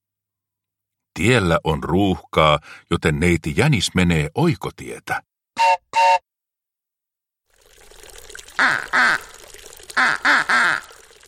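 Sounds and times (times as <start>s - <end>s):
speech: 1.2s - 6.2s
steady trickle of water: 7.5s - 11.2s
ducks quacking on a pond: 8.6s - 9.3s, 10.0s - 10.9s.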